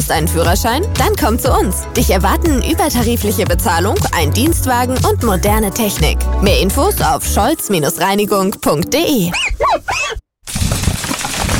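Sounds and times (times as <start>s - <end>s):
speech: 0.1s - 10.2s
stone chip cracking a car windscreen: 10.5s - 11.5s.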